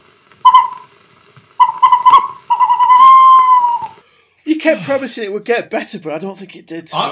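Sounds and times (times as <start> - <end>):
snowy owl whistle-like calls: 0.4 - 0.9, 1.6 - 4.0
speech: 4.6 - 7.1.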